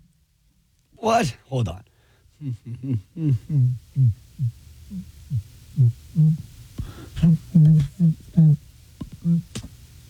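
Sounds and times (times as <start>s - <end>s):
speech: 1.0s - 9.7s
person humming while holding their nose: 2.4s - 9.7s.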